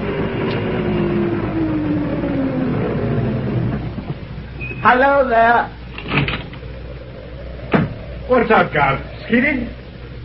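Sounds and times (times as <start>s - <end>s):
car engine rumbling as the car approaches in flat country: 0.0s - 10.2s
road noise: 0.0s - 10.2s
speech: 4.8s - 6.2s, 8.3s - 9.8s.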